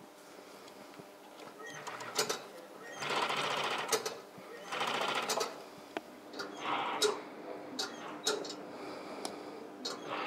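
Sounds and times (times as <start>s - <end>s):
faint room hum: 0.0s - 10.2s
Strobel industrial sewing machine stitching a shoe upper: 2.9s - 5.5s.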